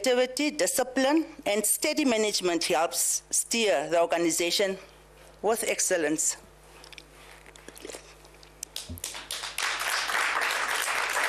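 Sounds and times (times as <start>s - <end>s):
speech: 0.0s - 6.5s
audience applause from many hands: 8.8s - 11.2s.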